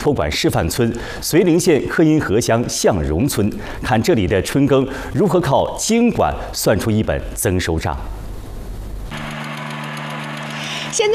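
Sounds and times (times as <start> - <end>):
speech: 0.0 - 8.3, 11.0 - 11.1
high-horsepower seeding machine engines sowing a soybean field: 9.1 - 11.1.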